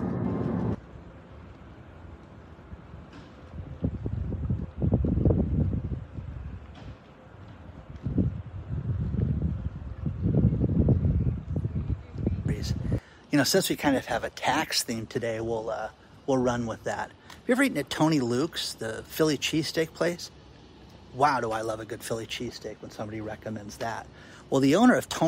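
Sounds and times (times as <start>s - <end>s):
low wind rumble buffeting the microphone outdoors by boats: 0.0s - 0.8s, 2.6s - 13.1s
speech: 12.7s - 20.4s, 21.2s - 25.2s.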